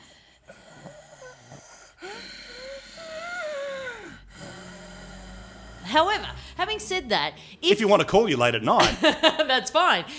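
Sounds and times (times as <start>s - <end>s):
person imitating heavy wheezy breathing: 0.0s - 6.6s
speech: 6.0s - 10.1s.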